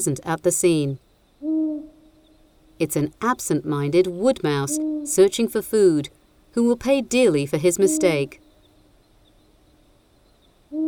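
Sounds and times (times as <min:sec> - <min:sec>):
speech: 0:00.0 - 0:01.0, 0:02.8 - 0:08.4
long-eared owl hooting: 0:01.4 - 0:02.5, 0:04.6 - 0:05.3, 0:07.8 - 0:08.5.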